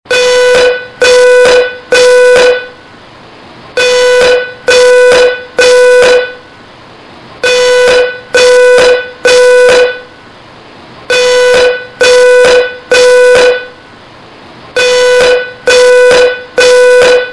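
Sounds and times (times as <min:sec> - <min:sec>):
smoke alarm beeping: 0:00.1 - 0:02.8, 0:03.8 - 0:06.4, 0:07.4 - 0:10.1, 0:11.1 - 0:13.8, 0:14.8 - 0:17.3.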